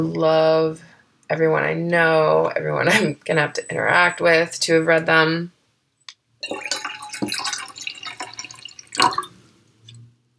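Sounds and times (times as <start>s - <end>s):
speech: 0.0s - 5.6s, 6.4s - 7.5s
coffee pouring into a cup: 6.4s - 10.0s.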